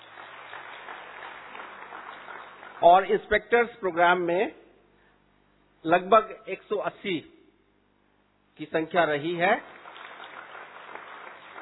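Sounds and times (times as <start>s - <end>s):
audience applause at an event attended by officers and families: 0.0s - 3.1s, 9.5s - 11.6s
speech: 2.8s - 4.6s, 5.8s - 7.4s, 8.6s - 9.8s.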